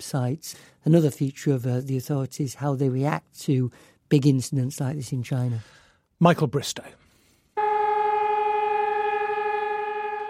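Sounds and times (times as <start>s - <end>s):
speech: 0.0s - 7.0s
sirens sounding to mark the 80th anniversary of the start of the Warsaw Uprising: 7.6s - 10.2s.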